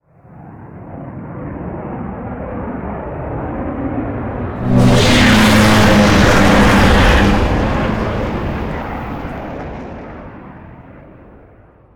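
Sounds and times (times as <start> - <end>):
strogg flyer vehicle passing by: 4.5 - 10.6.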